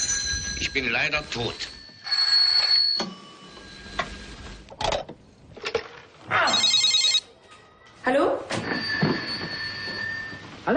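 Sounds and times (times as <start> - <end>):
telephone bell ringing: 0.0 - 4.7, 6.4 - 7.3, 8.7 - 10.6
speech: 0.6 - 1.8, 8.1 - 8.6.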